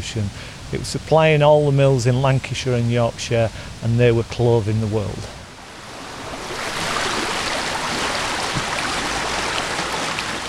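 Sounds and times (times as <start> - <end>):
speech: 0.0 - 5.4
waterfall rushing beside a bobbin mill in the Lake District countryside, Cumbria: 5.3 - 10.4.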